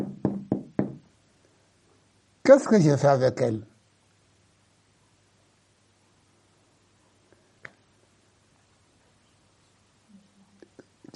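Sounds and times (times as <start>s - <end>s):
firm knocking on a door: 0.0s - 1.0s
speech: 2.4s - 3.7s.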